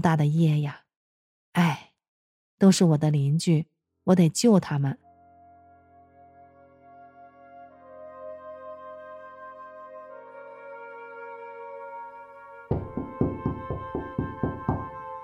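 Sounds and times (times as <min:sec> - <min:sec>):
speech: 0:00.0 - 0:00.8, 0:02.6 - 0:05.0
sustained musical drone: 0:05.0 - 0:13.5
loud rapid knocking on a door: 0:12.7 - 0:15.0.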